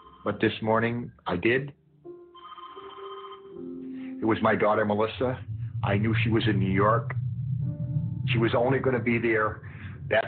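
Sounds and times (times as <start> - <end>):
speech: 0.2 - 1.8, 4.2 - 7.2, 8.2 - 10.2
telephone ringing with electronic trill: 2.3 - 3.8.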